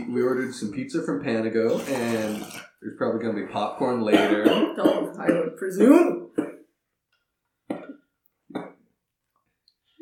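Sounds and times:
speech: 0:00.1 - 0:06.2
harsh coughs: 0:04.1 - 0:05.6.

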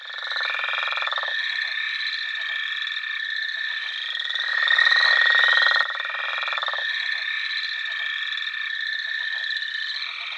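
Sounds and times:
northern leopard frog calling: 0:00.0 - 0:10.3.

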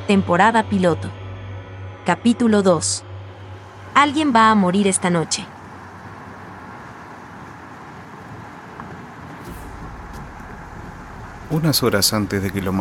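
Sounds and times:
speech: 0:00.1 - 0:01.2, 0:02.0 - 0:03.1, 0:04.0 - 0:05.6, 0:11.5 - 0:12.7
car cruising at speed along a highway toward Talca: 0:03.2 - 0:12.7.

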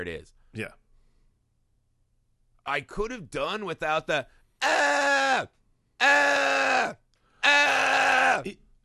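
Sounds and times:
speech: 0:00.0 - 0:00.8, 0:02.6 - 0:07.8, 0:08.4 - 0:08.6
voice imitating a girl's shrill scream: 0:04.6 - 0:08.5.

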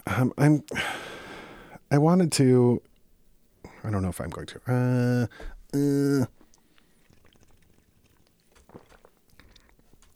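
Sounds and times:
speech: 0:00.2 - 0:01.0, 0:01.9 - 0:02.9, 0:03.8 - 0:06.4
person sipping non-alcoholic beer: 0:05.7 - 0:10.1.

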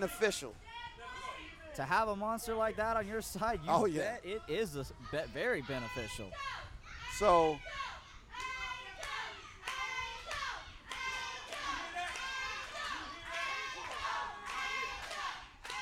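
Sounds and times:
speech: 0:00.0 - 0:00.7, 0:01.8 - 0:06.6, 0:07.2 - 0:07.9
crowd chanting a wrestler's name: 0:09.2 - 0:15.8.

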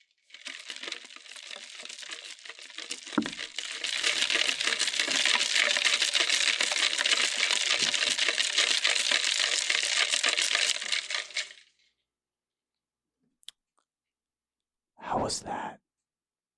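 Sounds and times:
crushed ice swirled around in a plastic cup: 0:00.0 - 0:11.7
speech: 0:15.3 - 0:15.8.

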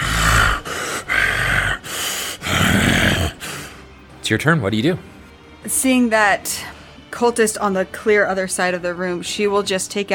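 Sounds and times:
voice imitating heavy breathing with deep grunting rasps: 0:00.0 - 0:03.8
speech: 0:04.3 - 0:10.1.

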